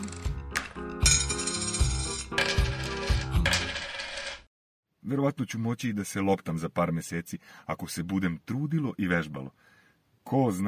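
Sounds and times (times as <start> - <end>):
marbles rolling and knocking together: 0.0 - 4.5
speech: 5.1 - 9.7, 10.3 - 10.6.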